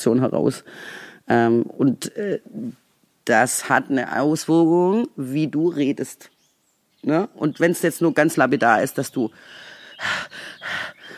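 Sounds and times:
speech: 0.0 - 6.3, 7.0 - 11.0
heavy breathy huffs: 0.6 - 1.2, 9.4 - 11.1.

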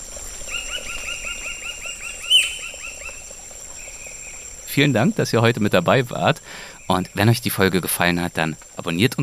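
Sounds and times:
forest birds chirping in a national park forest: 0.0 - 9.2
gurgling jungle stream in a national park forest: 0.0 - 9.2
speech: 4.8 - 9.2.

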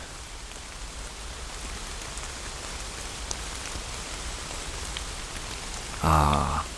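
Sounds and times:
steady rain pattering through a beech forest canopy: 0.0 - 6.7.

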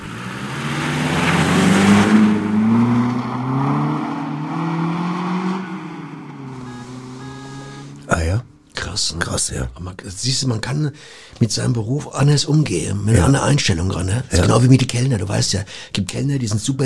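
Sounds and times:
engine of a mail carrier's vehicle driving off: 0.0 - 8.6
speech: 9.5 - 16.8.

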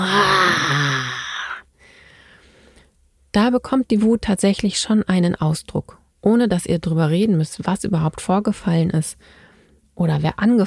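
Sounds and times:
person imitating a tiger's roar with a drawn-out vocal growl: 0.0 - 1.6
speech: 3.4 - 9.4, 10.0 - 10.6.

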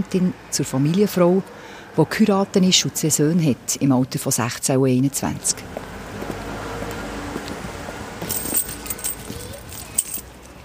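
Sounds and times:
speech: 0.0 - 5.9
keys jingling: 8.2 - 10.4.

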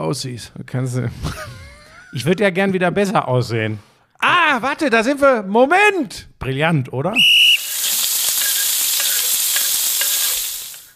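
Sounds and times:
speech: 0.1 - 7.4
laughter: 1.2 - 2.2
food sizzling in a hot pan: 7.2 - 10.9.

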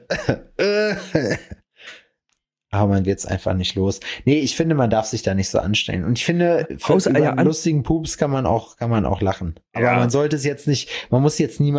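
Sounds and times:
person imitating coughing: 0.0 - 1.6
speech: 0.1 - 1.6, 2.7 - 11.7.

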